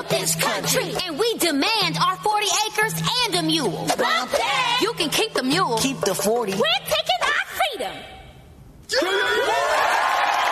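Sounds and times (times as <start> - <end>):
speech: 0.1 - 7.2, 8.9 - 9.9
loud crowd cheering and whooping: 8.9 - 10.5.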